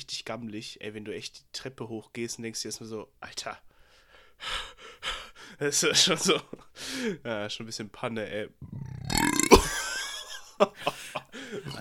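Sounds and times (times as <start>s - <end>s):
speech: 0.0s - 3.7s, 4.4s - 8.9s, 10.6s - 10.9s, 11.5s - 11.7s
laughter: 5.8s - 6.7s, 9.6s - 11.7s
loud drawn-out burp: 8.6s - 9.8s.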